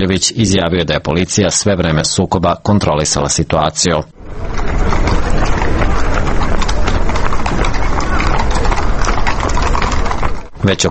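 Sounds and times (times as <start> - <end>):
speech: 0.0 - 5.0, 10.6 - 10.8
hooves of mounted police horses clattering on a city street: 4.2 - 10.8.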